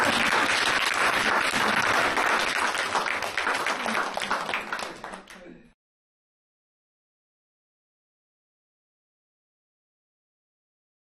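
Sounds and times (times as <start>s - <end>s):
crowd applauding: 0.0s - 5.6s.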